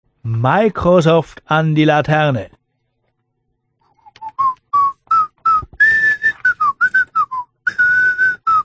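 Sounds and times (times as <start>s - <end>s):
speech: 0.2s - 2.6s
man whistling a bright marching melody: 4.0s - 8.6s.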